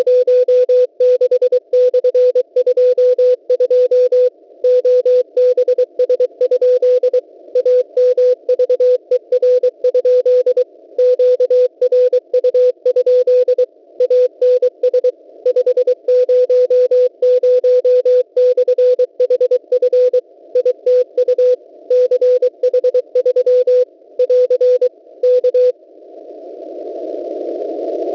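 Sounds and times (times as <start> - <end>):
morse code on 6477.50: 0.0 - 25.7.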